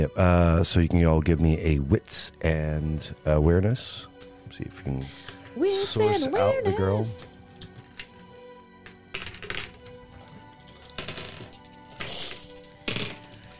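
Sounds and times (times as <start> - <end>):
speech: 0.0 - 7.3
dice rolling on a hard table for a tabletop game check: 9.1 - 13.5.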